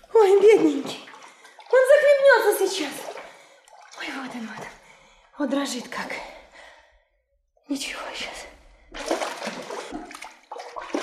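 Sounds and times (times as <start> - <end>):
water splashing as a person is thrown in: 0.0 - 5.1, 8.8 - 11.0
speech: 0.2 - 1.0, 2.4 - 3.1, 4.3 - 4.8, 5.4 - 6.3, 7.7 - 9.1.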